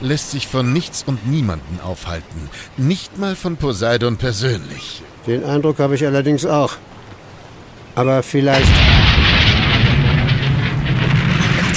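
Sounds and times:
speech: 0.0s - 7.0s, 8.0s - 9.4s
loud bang of a defective valve bursting on a boiler: 8.6s - 11.7s.

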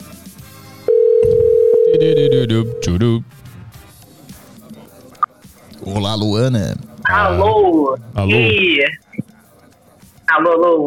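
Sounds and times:
telephone dial tone as a call is placed: 0.9s - 2.8s
speech: 2.1s - 3.5s, 5.9s - 9.0s, 10.3s - 10.8s.

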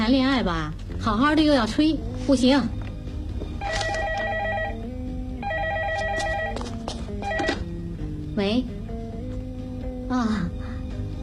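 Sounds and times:
speech: 0.1s - 2.8s, 8.4s - 8.8s
telephone ringing with an electronic warbling tone: 3.6s - 7.8s.

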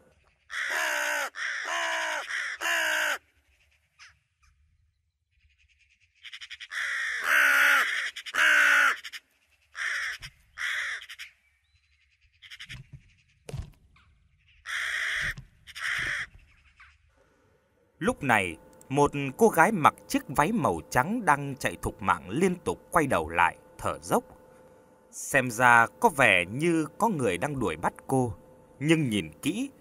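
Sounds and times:
large bird crying in a deep forest at night: 0.0s - 4.2s, 6.2s - 11.5s, 12.2s - 13.4s, 14.4s - 17.1s
speech: 18.2s - 24.4s, 25.2s - 29.7s.

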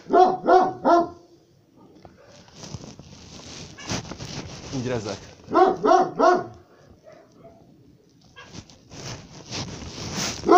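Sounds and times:
dog barking: 0.0s - 1.3s, 2.1s - 2.5s, 5.5s - 7.7s
low rustling noise: 1.9s - 10.5s
speech: 4.8s - 6.4s.

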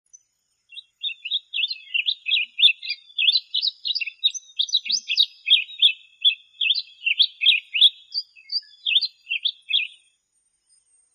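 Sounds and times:
bird singing high twittering chirps and trills: 0.1s - 11.1s.

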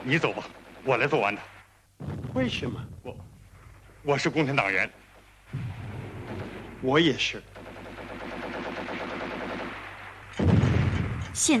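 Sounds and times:
enemy artillery shelling and gunfire: 0.0s - 3.3s, 5.5s - 11.5s
speech: 0.0s - 3.3s, 4.0s - 7.6s, 11.4s - 11.5s
loud boomy artillery blast: 2.0s - 3.6s, 5.5s - 7.2s, 10.3s - 11.5s.

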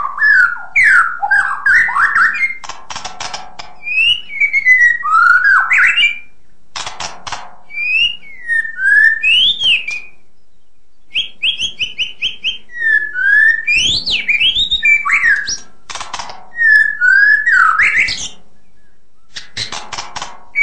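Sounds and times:
White-rumped shama full variation song: 0.0s - 2.6s, 3.8s - 6.3s, 7.7s - 10.2s, 11.1s - 15.7s, 16.5s - 19.5s
White-rumped shama short clicks: 2.2s - 4.1s, 6.7s - 7.6s, 13.8s - 16.9s, 18.0s - 18.4s, 19.3s - 20.6s.

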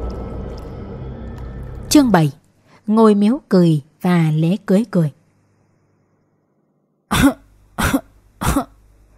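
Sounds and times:
speech: 1.9s - 5.2s, 7.2s - 7.4s
old man giving dry hacking coughs: 7.1s - 8.8s.

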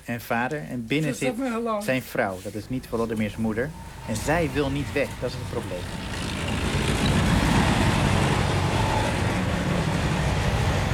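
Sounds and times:
speech: 0.1s - 6.3s
military tank engine and tracks rumbling while driving past: 2.8s - 10.9s.

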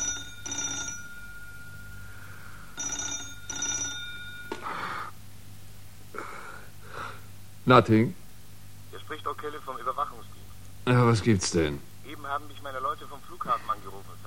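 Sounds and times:
telephone ringing: 0.0s - 5.1s
low steady hum: 0.0s - 14.2s
speech: 7.7s - 8.2s, 11.1s - 14.2s.

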